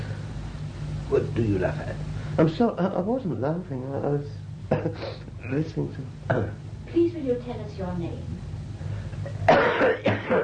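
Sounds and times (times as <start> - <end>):
faint low hum: 0.0 - 10.4
speech: 1.1 - 8.5, 9.8 - 10.4
person coughing harshly: 4.7 - 5.2, 9.3 - 10.4.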